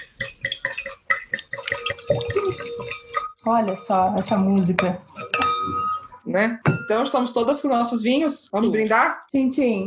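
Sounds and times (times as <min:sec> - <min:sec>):
wine pouring into a glass: 0:00.0 - 0:03.3
glass clinks: 0:00.8 - 0:03.5, 0:04.2 - 0:07.3
speech: 0:03.4 - 0:05.1, 0:06.3 - 0:09.8.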